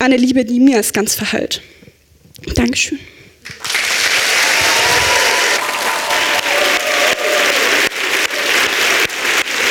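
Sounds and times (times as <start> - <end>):
speech: 0.0 - 1.8, 2.4 - 3.7
applause from a sizable audience: 3.4 - 9.6
faint cheers: 4.2 - 9.0.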